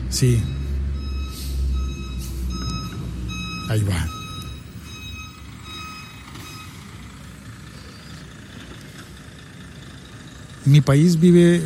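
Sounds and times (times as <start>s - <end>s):
garbage truck diesel engine rumble: 0.0s - 11.6s
speech: 0.1s - 0.6s, 3.7s - 4.2s, 10.6s - 11.6s
garbage truck reversing alarm beeping: 0.1s - 8.2s.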